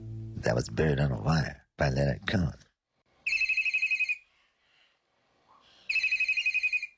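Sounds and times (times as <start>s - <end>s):
speech: 0.4s - 2.7s
telephone ringing with fast-trilling electronic warble: 3.3s - 4.2s, 5.9s - 6.9s.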